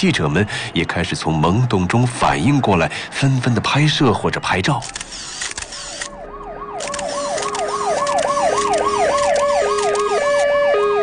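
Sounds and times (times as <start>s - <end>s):
speech: 0.0s - 5.3s
police siren with rapid rising-and-falling wail: 5.6s - 11.0s.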